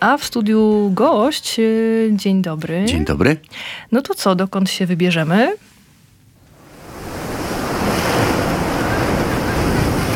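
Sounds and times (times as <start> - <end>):
speech: 0.0 - 5.7
wind: 6.4 - 10.1
sea waves breaking on shore: 6.5 - 10.1.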